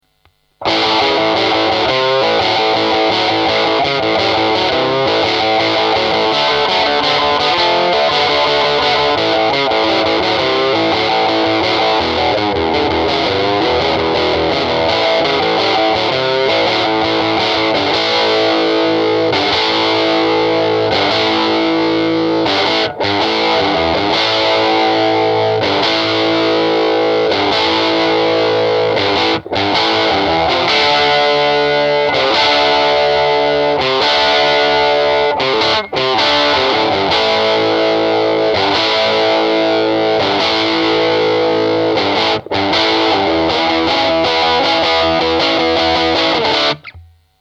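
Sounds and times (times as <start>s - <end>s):
crunchy 5W valve guitar amp tone: 0.0s - 47.3s.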